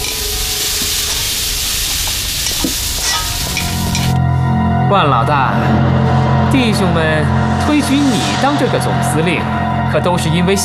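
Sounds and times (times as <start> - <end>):
food stir-frying in a hot iron wok: 0.0 - 4.2
speech: 4.9 - 10.6.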